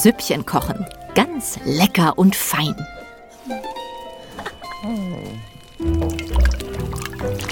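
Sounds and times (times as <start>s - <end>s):
speech: 0.0s - 3.8s, 4.4s - 6.2s
herb brew bubbling in a magic pot: 5.6s - 7.4s.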